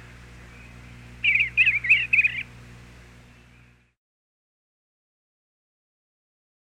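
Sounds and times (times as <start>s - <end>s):
Eastern bluebird singing warbled notes: 0.0s - 4.0s
low background hum: 0.0s - 4.0s.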